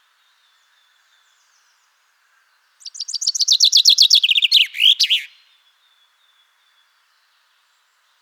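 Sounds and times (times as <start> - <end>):
common chaffinch Fringilla coelebs singing: 2.8 - 5.5.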